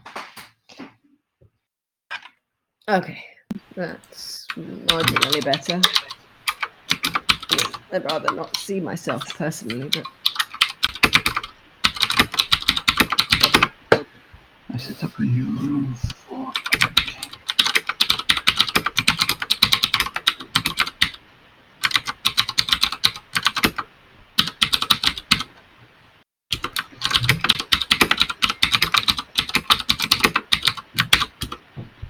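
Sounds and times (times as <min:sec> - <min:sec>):
speech: 0:02.9 - 0:06.1, 0:07.0 - 0:10.2, 0:14.8 - 0:16.2
typing on a mechanical keyboard: 0:04.9 - 0:13.7, 0:16.6 - 0:21.2, 0:21.8 - 0:25.5, 0:26.5 - 0:31.6.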